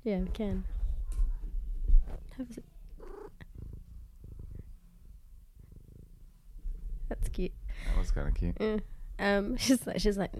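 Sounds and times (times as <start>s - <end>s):
speech: 0.0s - 0.8s, 2.1s - 2.7s, 7.2s - 10.3s
domestic cat purring: 0.5s - 7.6s.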